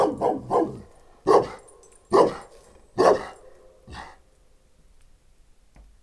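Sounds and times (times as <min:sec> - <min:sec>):
St. Bernard and Moscow Watchdog mix dog barking in a farmyard: 0:00.0 - 0:04.2.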